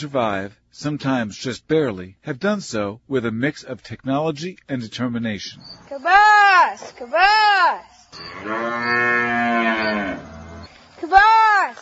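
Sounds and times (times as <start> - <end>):
speech: 0.0 - 10.3, 11.0 - 11.8
dairy cow mooing on a small family farm: 8.2 - 10.7.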